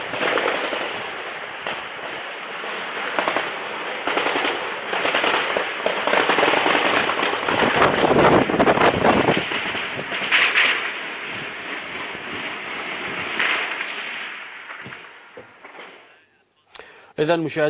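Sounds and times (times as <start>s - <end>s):
gunfire in a city: 0.0s - 16.1s
heavy shelling blasts in a city: 0.0s - 16.4s.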